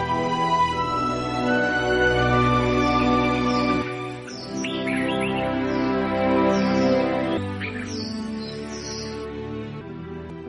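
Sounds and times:
steady sustained tonal background: 0.0s - 10.4s
birds chirping in the tree canopy outside a window: 2.8s - 9.8s.

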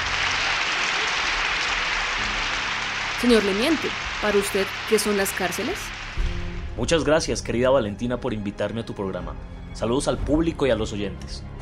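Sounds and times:
audience applause welcoming a guest on a talk show: 0.0s - 6.4s
speech: 3.2s - 11.5s.

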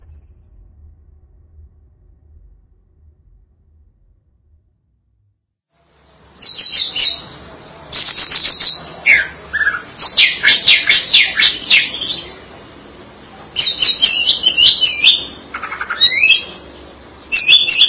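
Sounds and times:
greater green leafbird song: 5.8s - 17.8s.

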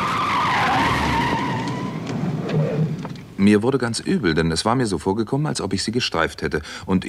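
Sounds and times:
car braking hard and skidding on a road at night: 0.0s - 3.0s
speech: 3.4s - 7.0s.

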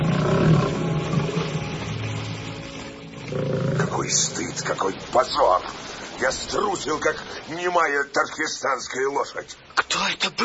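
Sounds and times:
lions roaring across a bay: 0.0s - 4.4s
speech: 4.1s - 10.4s.

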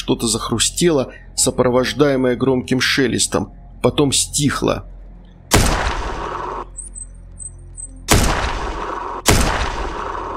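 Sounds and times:
speech: 0.1s - 4.9s
gunshots fired behind a fence: 5.5s - 6.6s, 8.1s - 10.3s.

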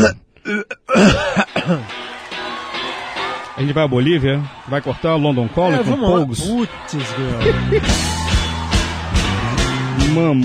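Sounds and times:
person giving a short little cough or throat clearing: 0.0s - 1.9s
speech: 0.0s - 1.9s, 3.6s - 8.2s, 10.1s - 10.4s
laughter: 0.9s - 2.0s, 4.1s - 10.1s.

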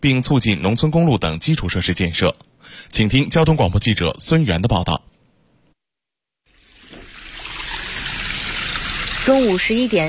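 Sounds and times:
speech: 0.0s - 5.1s, 9.3s - 10.0s
clear stream flowing slowly past a village entrance in rural Miyun, Beijing: 6.5s - 10.0s.

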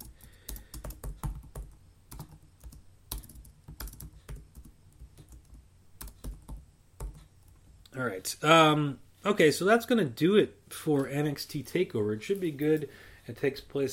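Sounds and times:
typing on a computer keyboard: 0.0s - 7.6s
speech: 8.0s - 13.9s.

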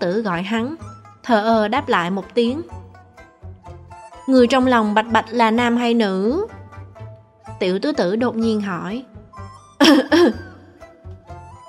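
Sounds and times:
speech: 0.0s - 2.7s, 4.3s - 6.6s, 7.6s - 9.1s, 9.8s - 10.4s
coughing from someone choking on food during a meal: 9.8s - 10.9s.

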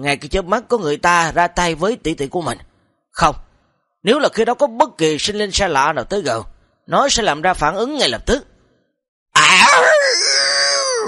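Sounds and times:
speech: 0.0s - 3.4s, 4.0s - 8.5s
monstrous creature's furious roar: 9.4s - 11.0s.

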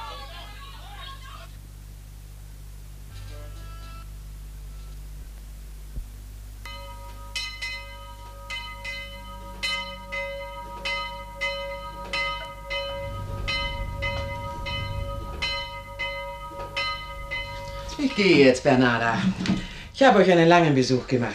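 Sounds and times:
low rumble: 4.2s - 20.8s
church bells ringing for the last rosary: 6.6s - 20.1s
speech: 18.0s - 21.3s.

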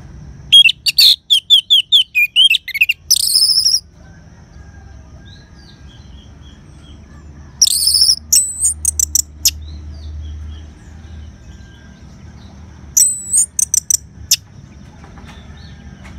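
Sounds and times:
low background hum: 0.0s - 16.1s
orange-headed thrush singing clear high whistled notes: 0.5s - 3.9s, 7.5s - 9.8s, 12.9s - 14.4s.

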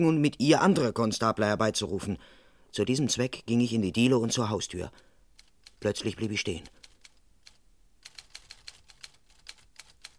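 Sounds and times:
speech: 0.0s - 5.1s, 5.8s - 6.8s
typewriter keys clacking: 5.4s - 10.1s.

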